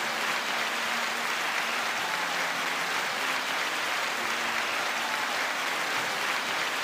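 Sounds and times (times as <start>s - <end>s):
crowd applauding: 0.0s - 6.8s.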